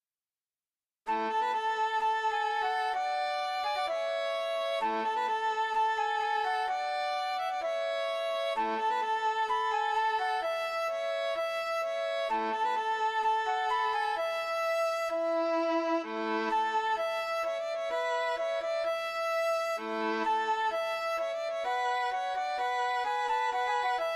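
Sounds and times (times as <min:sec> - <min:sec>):
flute: 0:01.1 - 0:24.1
violin: 0:01.1 - 0:24.1.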